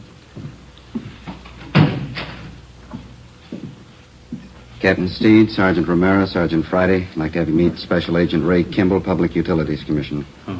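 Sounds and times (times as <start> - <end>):
office door swinging shut with a thud and rattle: 1.6 - 2.6
speech: 4.8 - 10.4.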